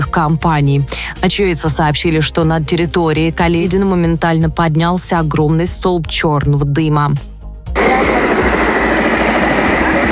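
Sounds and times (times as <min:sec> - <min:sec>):
speech: 0:00.1 - 0:07.3
aircraft, apparently a helicopter, taking off near a large warehouse fire: 0:07.8 - 0:10.1.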